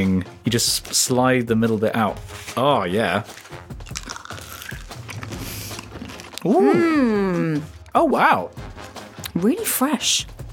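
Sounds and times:
speech: 0.0s - 4.2s, 6.4s - 10.4s
biting and crunching a crisp mint: 3.1s - 6.6s
chewing: 3.2s - 6.7s.

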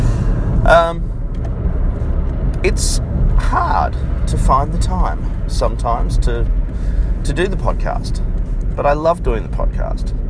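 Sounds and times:
steady low rumble in a car interior: 0.0s - 10.2s
speech: 0.7s - 1.1s, 2.6s - 10.2s.

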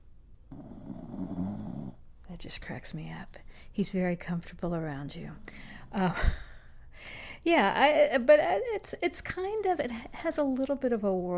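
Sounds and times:
dog snoring with a low raspy rumble: 0.5s - 2.1s
speech: 2.4s - 11.3s.

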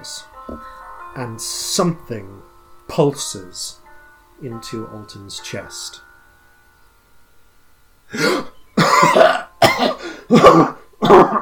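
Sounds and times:
speech: 0.0s - 3.8s, 4.4s - 6.1s, 8.1s - 8.5s, 10.3s - 11.3s
man coughing and sputtering: 8.2s - 11.3s.

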